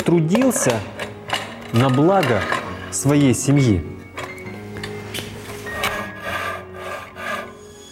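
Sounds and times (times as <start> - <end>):
speech: 0.1 - 1.0, 1.7 - 4.0
hand saw rasping on wood: 5.8 - 7.6.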